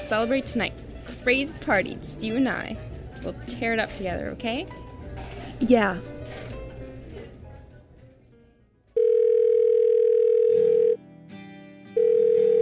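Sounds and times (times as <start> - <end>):
noise: 0.0 - 9.0
speech: 0.1 - 4.8, 5.6 - 6.2
loud steady electronic phone ringback tone: 9.0 - 11.0, 12.0 - 12.6.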